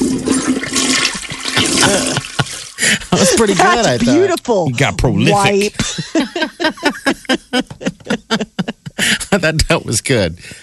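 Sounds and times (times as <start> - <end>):
toilet flushing: 0.0 - 4.2
laughter: 1.2 - 4.2, 5.3 - 9.6
speech: 2.8 - 7.6, 9.4 - 10.6.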